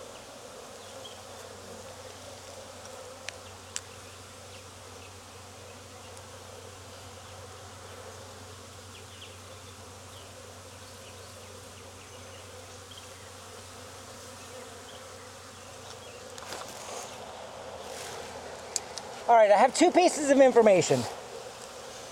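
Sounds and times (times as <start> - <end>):
honeybees buzzing around an open hive: 0.0 - 22.1
faint ticks: 2.4 - 3.9
speech: 19.3 - 21.2.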